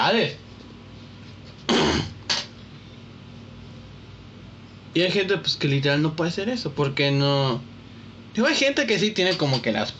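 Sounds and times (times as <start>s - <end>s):
speech: 0.1s - 0.4s, 5.0s - 7.7s, 8.4s - 9.9s
person coughing harshly: 1.7s - 2.2s.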